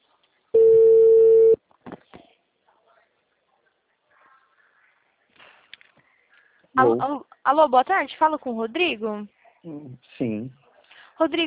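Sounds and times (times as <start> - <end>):
telephone ringback tone with nobody answering: 0.6 - 1.6
speech: 6.8 - 10.6, 11.2 - 11.4.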